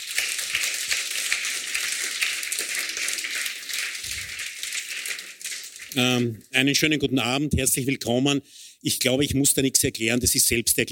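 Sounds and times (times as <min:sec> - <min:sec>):
audience applauding: 0:00.0 - 0:06.3
speech: 0:06.0 - 0:10.9.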